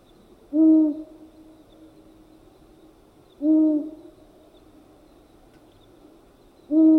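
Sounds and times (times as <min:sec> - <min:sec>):
faint hiss: 0:00.0 - 0:06.9
long-eared owl hooting: 0:00.5 - 0:01.2, 0:03.4 - 0:04.1, 0:06.7 - 0:06.9.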